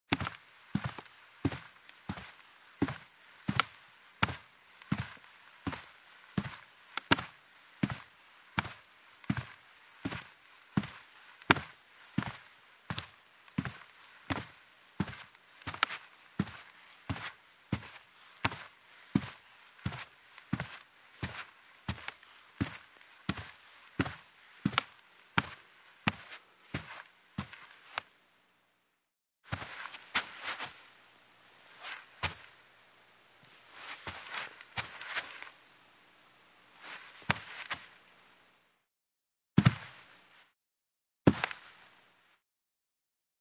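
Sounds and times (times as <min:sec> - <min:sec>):
footsteps in shoes on a carpeted wooden floor: 0:00.1 - 0:27.8, 0:29.5 - 0:30.8, 0:31.8 - 0:32.5, 0:33.7 - 0:35.6, 0:36.8 - 0:37.9.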